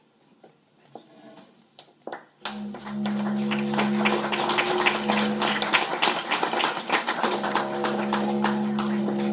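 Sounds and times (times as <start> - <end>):
didgeridoo: 2.5 - 6.3, 7.1 - 9.3.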